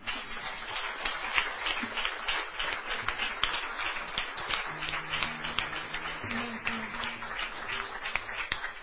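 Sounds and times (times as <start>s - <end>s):
audience applause: 0.0s - 8.8s
faint low hum or tone: 4.5s - 8.4s.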